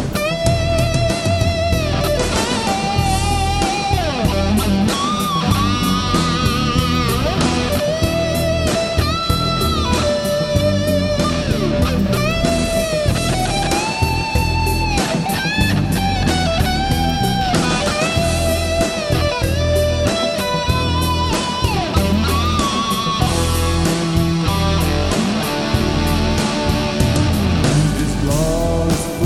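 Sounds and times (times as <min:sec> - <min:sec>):
Big Muff distorted guitar solo through Mesa Bassman: 0:00.2 - 0:29.2.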